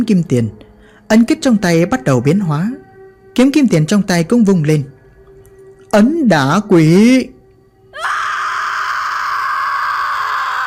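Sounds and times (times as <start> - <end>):
speech: 0.0 - 2.8, 3.4 - 4.9, 5.9 - 7.3
piercing shrill high-pitched scream: 7.9 - 10.6.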